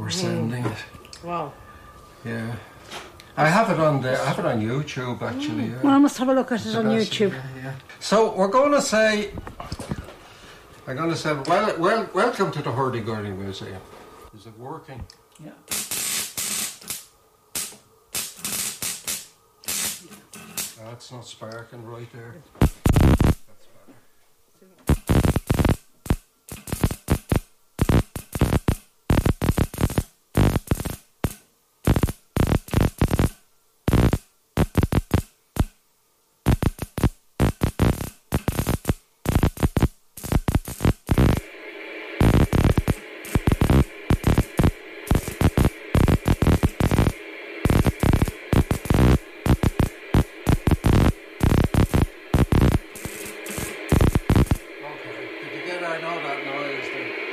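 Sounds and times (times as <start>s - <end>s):
steady hiss: 0.0s - 57.3s
speech: 0.1s - 1.6s, 2.2s - 9.8s, 10.9s - 15.8s, 20.9s - 22.8s
loud buzzy Morse code signal: 37.4s - 54.9s.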